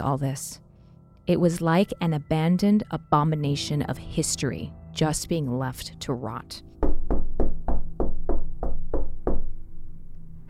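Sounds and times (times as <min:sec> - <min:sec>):
speech: 0:00.0 - 0:00.6, 0:01.3 - 0:06.7
firm knocking on a wooden door: 0:06.8 - 0:09.6.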